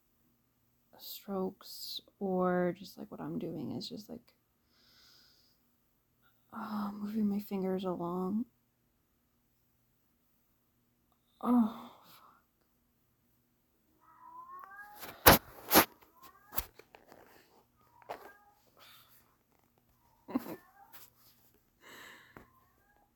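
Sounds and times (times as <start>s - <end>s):
speech: 1.0s - 4.4s, 6.6s - 8.5s, 11.4s - 11.9s
cat meowing: 14.0s - 16.8s, 17.8s - 18.9s.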